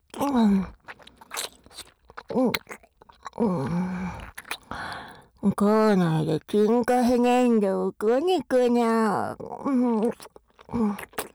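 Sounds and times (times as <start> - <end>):
moist crunching mouth noises of thorough chewing of food: 0.0 - 4.9, 10.0 - 11.3
speech: 0.2 - 0.8, 2.3 - 2.8, 3.4 - 4.3, 5.4 - 11.3.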